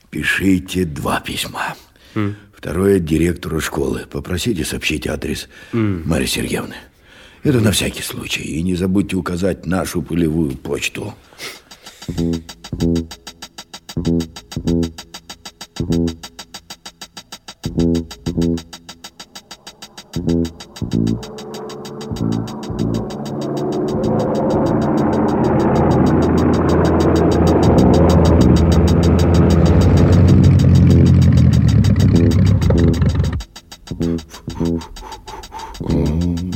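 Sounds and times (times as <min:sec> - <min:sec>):
speech: 0:00.1 - 0:13.3, 0:14.0 - 0:15.1, 0:15.8 - 0:16.4, 0:17.6 - 0:18.8, 0:20.2 - 0:29.6
airplane engine sputtering and stalling: 0:10.8 - 0:36.5.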